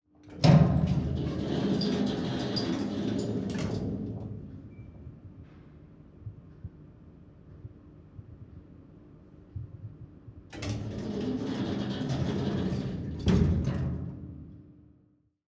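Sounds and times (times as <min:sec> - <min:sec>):
elevator doors opening and closing: 0:00.3 - 0:05.0, 0:10.5 - 0:14.6.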